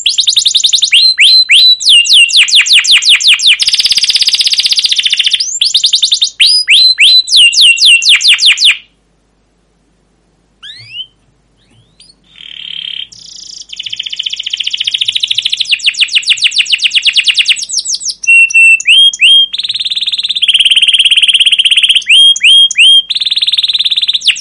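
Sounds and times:
canary song with rolling trills: 0.0 - 9.1, 10.5 - 24.3.

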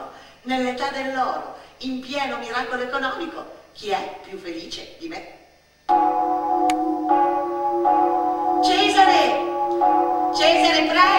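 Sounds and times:
speech: 0.4 - 6.0
church bells ringing for a procession: 5.9 - 11.1.

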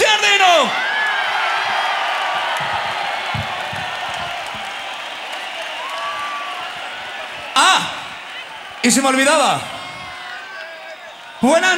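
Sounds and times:
audience at a live metal concert clapping and cheering: 0.0 - 11.7
whistle: 3.3 - 11.7
speech: 8.8 - 9.8, 11.4 - 11.7.

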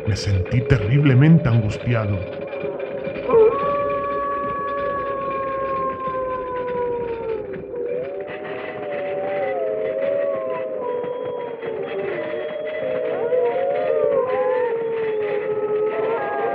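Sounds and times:
speech: 0.1 - 2.4
wolves howling: 3.3 - 16.5.

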